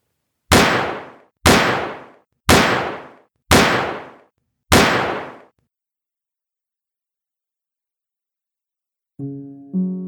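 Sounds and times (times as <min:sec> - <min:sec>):
pistol shots: 0:00.5 - 0:05.5.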